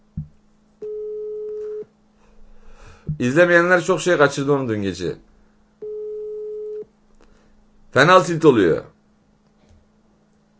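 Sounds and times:
telephone busy signal: 0.8s - 1.9s, 5.8s - 6.8s
speech: 3.2s - 5.3s, 7.9s - 8.9s.

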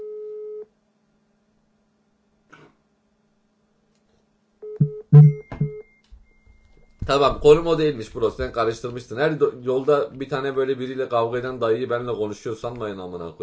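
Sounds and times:
phone hang-up busy tone beeps: 0.0s - 0.6s, 4.6s - 6.4s
speech: 5.1s - 5.4s, 7.1s - 13.4s.

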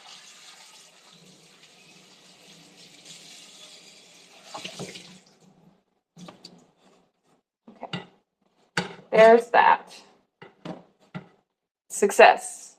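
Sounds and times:
running tap water splashing as a small item is rinsed: 0.0s - 5.6s
speech: 9.2s - 10.1s, 12.0s - 12.6s.

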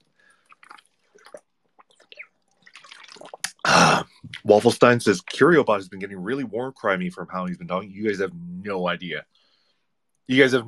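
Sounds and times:
person drinking water: 0.0s - 4.5s
speech: 4.5s - 9.3s, 10.3s - 10.6s.

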